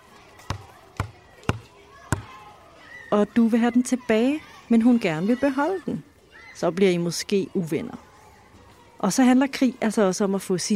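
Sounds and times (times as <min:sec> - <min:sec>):
ball bouncing: 0:00.4 - 0:02.4
speech: 0:03.1 - 0:08.1, 0:09.0 - 0:10.7.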